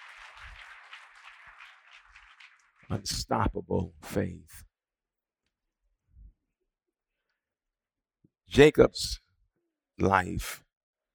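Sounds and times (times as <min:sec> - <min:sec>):
audience applauding: 0:00.0 - 0:03.2
speech: 0:02.9 - 0:04.7, 0:08.6 - 0:09.2, 0:10.0 - 0:10.6.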